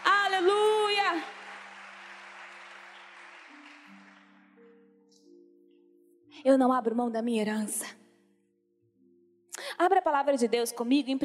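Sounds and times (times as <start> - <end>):
audience applauding: 0.0 - 4.7
speech: 6.4 - 8.0, 9.8 - 11.2.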